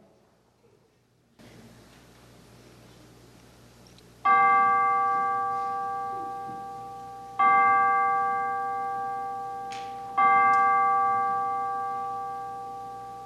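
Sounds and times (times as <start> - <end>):
chimes ringing in a church worship service: 4.3 - 13.2.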